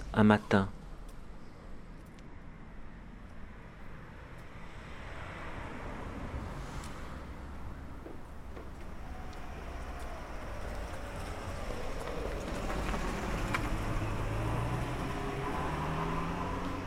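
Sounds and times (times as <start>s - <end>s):
speech: 0.1s - 0.8s
car speeding along a boulevard in Arles in the morning: 4.7s - 16.8s.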